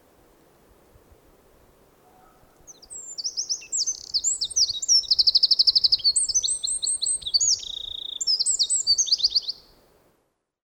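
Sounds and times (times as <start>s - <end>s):
Eurasian wren song fragment: 2.1s - 9.8s.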